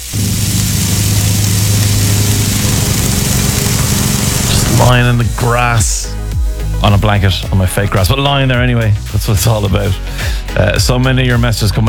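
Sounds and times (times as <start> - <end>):
lawn mower engine starting and running: 0.0 - 6.0
speech: 4.9 - 6.1, 6.8 - 11.8.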